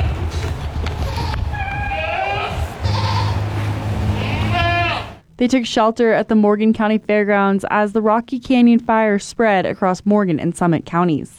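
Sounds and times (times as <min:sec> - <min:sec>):
several goats bleating in wavering quavering calls: 0:00.0 - 0:05.2
speech: 0:05.4 - 0:11.3.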